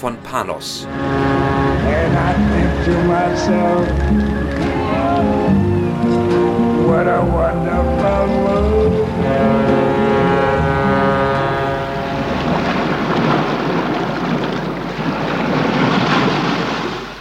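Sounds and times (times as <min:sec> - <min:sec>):
speech: 0:00.0 - 0:05.4, 0:06.9 - 0:09.6
sustained musical tones: 0:00.0 - 0:12.4
waves breaking on a Caribbean beach: 0:12.1 - 0:17.1.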